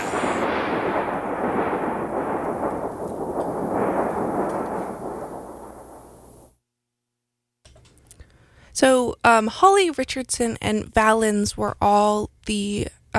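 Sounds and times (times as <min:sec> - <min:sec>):
thunder crack from lightning with rolling rumble: 0:00.0 - 0:06.6
speech: 0:08.8 - 0:13.0.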